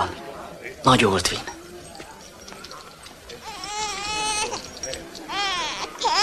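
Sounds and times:
speech: 0.8s - 1.5s
newborn baby crying: 3.4s - 4.6s, 5.3s - 6.2s.

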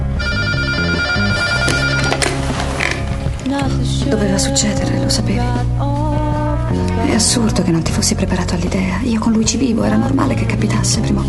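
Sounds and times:
telephone ringing at night: 0.2s - 3.1s
speech: 4.1s - 5.9s, 6.7s - 11.2s.

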